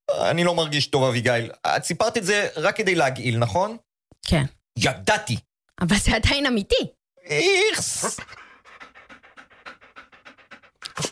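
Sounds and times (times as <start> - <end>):
speech: 0.1 - 8.4
dog panting: 7.8 - 11.0.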